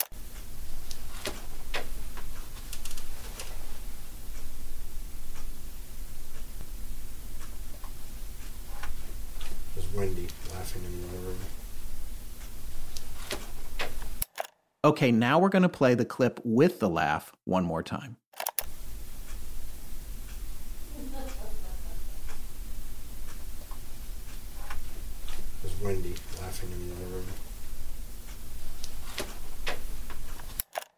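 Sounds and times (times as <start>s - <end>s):
wall clock ticking: 0.0s - 14.2s, 18.6s - 30.6s
quiet room hum: 0.0s - 14.3s, 18.6s - 30.6s
faint voice: 9.8s - 11.6s, 25.6s - 27.4s
speech: 10.0s - 11.6s, 14.8s - 18.2s.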